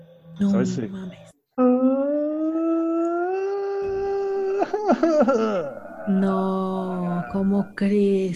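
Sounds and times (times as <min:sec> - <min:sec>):
speech: 0:00.4 - 0:01.7, 0:04.9 - 0:08.3
voice imitating a wailing, crying woman: 0:01.6 - 0:07.5.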